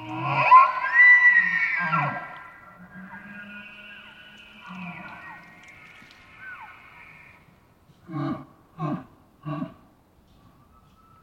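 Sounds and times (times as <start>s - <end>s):
fainter second elk bugle: 0.0s - 7.5s
wild elk bugling in the Pacific Northwest, Washington: 0.0s - 8.4s.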